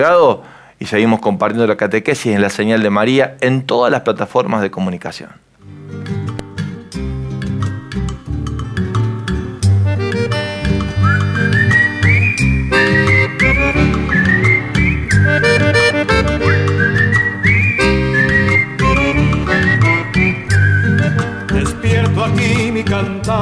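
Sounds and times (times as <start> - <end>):
speech: 0.0 - 5.8
music with whistled melody over harmonic accompaniment: 6.9 - 22.9.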